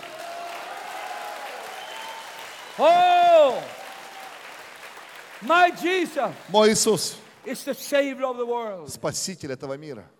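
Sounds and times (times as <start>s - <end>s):
crowd applauding: 0.0s - 7.7s
speech: 2.8s - 3.8s, 5.4s - 10.1s.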